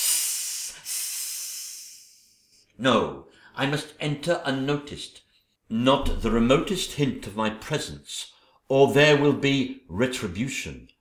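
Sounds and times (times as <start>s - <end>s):
person imitating a hiss: 0.0s - 2.5s
speech: 2.8s - 10.9s.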